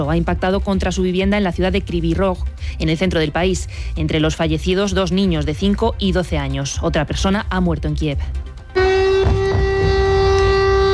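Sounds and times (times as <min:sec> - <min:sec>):
speech: 0:00.0 - 0:09.4
air raid sirens wailing in the Ukrainian capital: 0:08.7 - 0:10.9.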